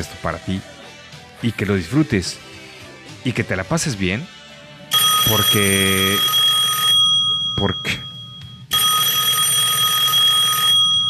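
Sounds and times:
speech: 0:00.0 - 0:00.8, 0:01.4 - 0:02.6, 0:03.2 - 0:04.4, 0:05.3 - 0:06.4, 0:07.6 - 0:08.0
bright electronic telephone ringing tone: 0:04.9 - 0:11.0.

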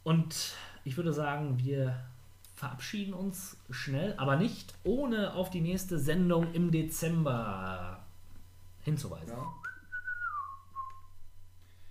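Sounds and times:
faint low hum: 0:00.0 - 0:11.9
speech: 0:00.1 - 0:08.0, 0:08.8 - 0:09.6
person whistling a melody from a Christmas film: 0:09.4 - 0:11.1.

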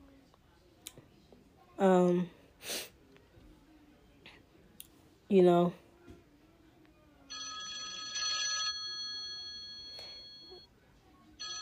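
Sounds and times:
speech: 0:01.8 - 0:02.9, 0:05.3 - 0:05.8
phone ringtone ringing: 0:07.3 - 0:10.7, 0:11.4 - 0:11.6.

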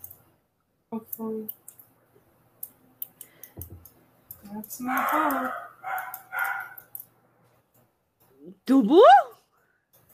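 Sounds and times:
speech: 0:00.9 - 0:01.6, 0:04.5 - 0:05.6, 0:08.7 - 0:09.3
dog barking: 0:04.8 - 0:06.8.

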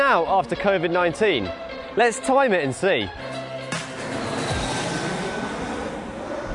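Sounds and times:
speech: 0:00.1 - 0:03.4
passenger plane landing roar at airport: 0:03.2 - 0:06.5.

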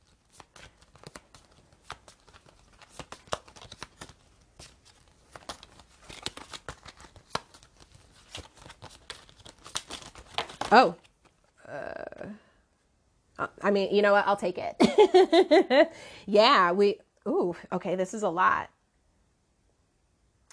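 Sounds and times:
cards being shuffled: 0:00.0 - 0:11.6
speech: 0:10.7 - 0:11.0, 0:13.6 - 0:18.8.

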